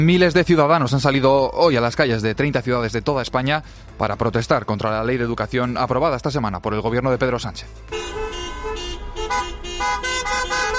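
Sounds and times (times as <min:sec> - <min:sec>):
speech: 0:00.0 - 0:08.2
car horns honking from caravans of cars in a protest in Spain: 0:07.9 - 0:10.7
steady rumble of traffic in city streets: 0:07.9 - 0:10.7.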